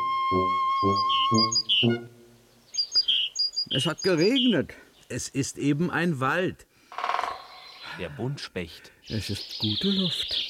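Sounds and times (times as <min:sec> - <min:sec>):
lower tonal notes: 0:00.0 - 0:02.6
speech: 0:00.3 - 0:02.2, 0:03.7 - 0:07.1, 0:08.0 - 0:10.4
great tit singing in a forest: 0:00.8 - 0:05.2, 0:07.4 - 0:10.4.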